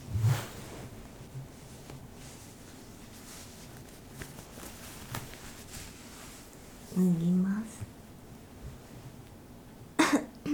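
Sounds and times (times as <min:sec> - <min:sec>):
speech: 0:07.0 - 0:07.8
sharp throat clearing: 0:10.0 - 0:10.5.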